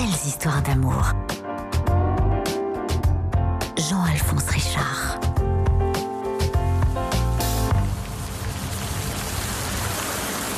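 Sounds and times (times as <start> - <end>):
speech: 0.2 - 1.3, 3.8 - 5.3
tonal music: 0.4 - 8.2
light rain pattering: 6.0 - 10.5.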